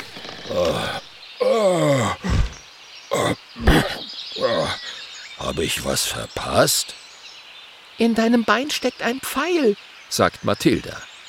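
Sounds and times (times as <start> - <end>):
speech: 0.5 - 1.7, 5.6 - 7.0, 8.0 - 11.1
person imitating a sabre-toothed dragon yawning and clearing its throat: 0.5 - 4.9.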